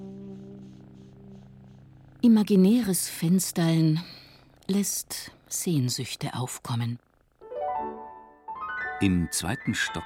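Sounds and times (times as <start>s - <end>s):
cat purring softly: 0.0s - 7.4s
speech: 2.2s - 7.1s, 9.0s - 10.0s.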